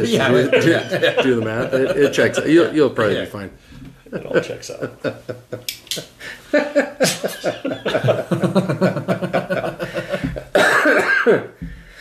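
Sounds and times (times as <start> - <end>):
laughter: 0.0 - 3.3, 4.0 - 11.6
speech: 0.0 - 9.8, 11.2 - 11.8
person coughing: 10.5 - 11.6.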